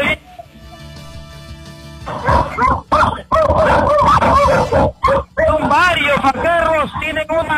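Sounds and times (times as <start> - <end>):
several dogs barking fiercely behind a door: 2.1 - 7.5
people talking: 5.4 - 7.5.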